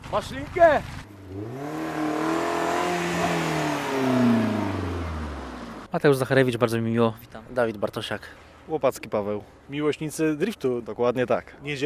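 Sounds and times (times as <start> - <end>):
speech: 0.1 - 2.4, 3.2 - 4.4, 5.9 - 11.8
drift car engine revving on a sandy grassy course: 1.0 - 5.9.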